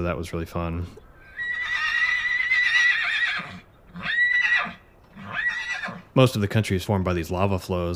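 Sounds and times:
speech: 0.0s - 1.0s, 6.2s - 7.9s
stallion whinnying and neighing: 1.3s - 6.1s.

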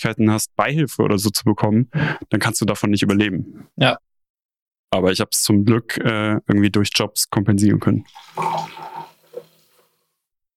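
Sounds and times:
speech: 0.0s - 4.1s, 4.9s - 9.0s
wine pouring into a glass: 8.0s - 10.0s
wine dripping: 8.0s - 10.1s.

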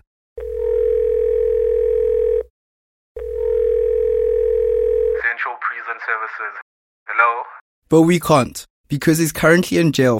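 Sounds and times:
telephone dial tone while placing a call: 0.4s - 2.5s, 3.2s - 5.2s
speech: 6.4s - 6.6s, 7.2s - 10.1s.

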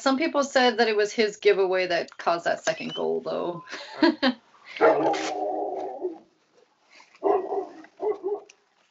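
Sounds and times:
speech: 0.0s - 5.5s
dog barking: 4.8s - 5.4s, 7.2s - 8.6s
dog long drawn-out whining bark: 4.8s - 6.3s, 7.2s - 8.6s.

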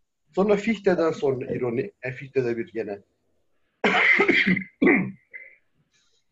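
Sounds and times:
speech: 0.4s - 3.2s, 3.8s - 5.2s
harsh cough: 3.8s - 5.6s.

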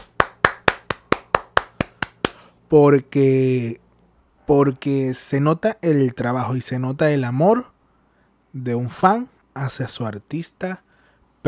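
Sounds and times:
single person clapping hands: 0.0s - 2.6s
speech: 2.7s - 3.8s, 4.5s - 7.7s, 8.5s - 10.8s.

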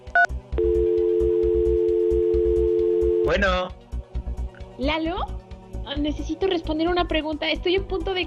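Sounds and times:
touch-tone keypad dialing a phone call: 0.2s - 3.3s
steady continuous telephone line tone: 0.6s - 3.4s
speech: 4.9s - 5.4s, 6.0s - 8.2s.

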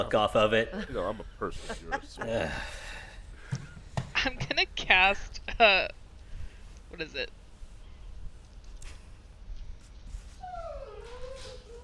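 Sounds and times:
speech: 0.0s - 2.9s, 4.2s - 6.0s, 6.9s - 7.4s
laughter: 0.8s - 2.8s
puppy whimpering: 10.4s - 11.8s.

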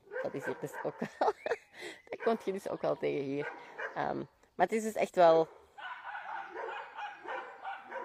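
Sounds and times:
dogs barking: 0.0s - 1.2s, 2.2s - 2.6s, 3.4s - 4.1s, 5.8s - 8.0s
speech: 0.2s - 5.6s
laughter: 1.0s - 3.4s.

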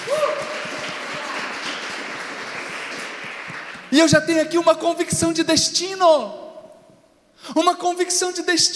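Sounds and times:
crowd applauding with many hands clapping: 0.0s - 4.1s
speech: 3.9s - 6.4s, 7.5s - 8.7s.

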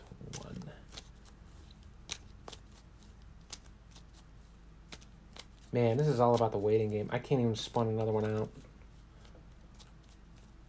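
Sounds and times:
deck of cards being shuffled: 0.0s - 10.6s
low hum: 0.0s - 10.6s
speech: 5.7s - 8.6s.

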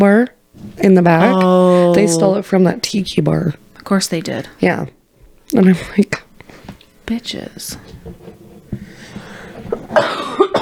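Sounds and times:
speech: 0.0s - 6.2s, 7.1s - 8.8s, 9.9s - 10.6s
short sharp coughs: 9.8s - 10.6s.

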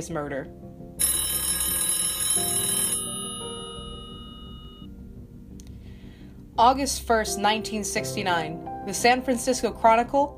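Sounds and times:
speech: 0.0s - 0.7s, 2.4s - 2.8s, 6.6s - 10.3s
telephone bell ringing: 1.0s - 4.9s.

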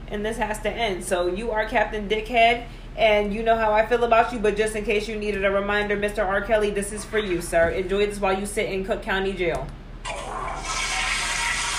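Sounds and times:
speech: 0.1s - 10.2s
toilet flushing: 10.0s - 11.7s.

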